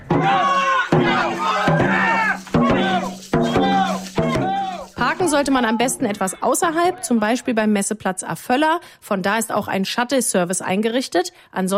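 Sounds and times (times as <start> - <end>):
steady bass drumbeats at a dragon boat race: 0.0 - 6.2
spectators cheering and shouting at a dragon boat race: 0.0 - 7.3
speech: 5.4 - 11.7.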